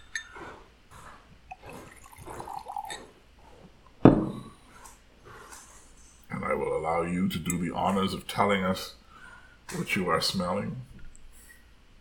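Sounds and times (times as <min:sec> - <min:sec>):
single malt scotch trickling and gurgling as poured from a bottle: 0:00.0 - 0:04.0
light glassy knocks: 0:04.0 - 0:04.5
speech: 0:07.0 - 0:09.0, 0:09.7 - 0:10.9.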